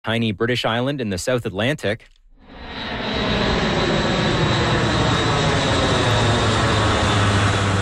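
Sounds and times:
speech: 0:00.0 - 0:02.2
aircraft engines roaring as planes fly over Tristan da Cunha delivering supplies: 0:02.4 - 0:07.8.

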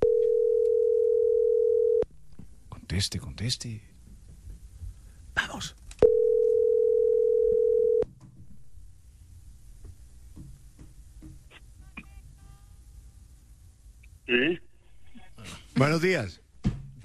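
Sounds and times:
telephone dial tone: 0:00.0 - 0:02.0, 0:06.0 - 0:08.0
speech: 0:02.9 - 0:03.9, 0:05.6 - 0:05.8, 0:15.8 - 0:16.4.

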